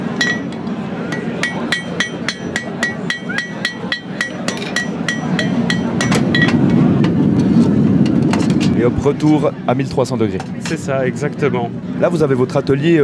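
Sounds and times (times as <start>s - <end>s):
low rumbling hum: 0.0s - 12.1s
farrier hammering cherry-red hot iron on an anvil at a mobile forge: 0.2s - 7.2s
speech: 8.8s - 13.0s.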